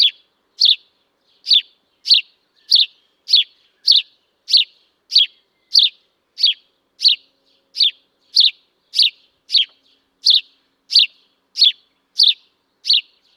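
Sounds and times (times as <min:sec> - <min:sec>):
house sparrow chirping: 0:00.0 - 0:13.3.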